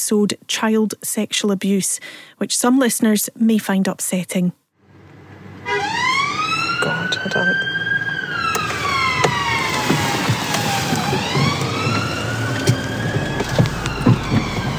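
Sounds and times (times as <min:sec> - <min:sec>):
speech: 0:00.1 - 0:04.6, 0:06.8 - 0:07.8
traffic noise: 0:04.8 - 0:14.7
wailing emergency siren: 0:05.4 - 0:14.7.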